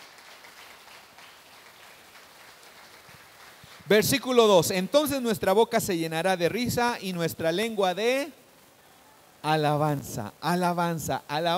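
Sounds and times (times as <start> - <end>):
church audience applauding: 0.0 - 3.9
speech: 3.9 - 8.4, 9.4 - 11.5.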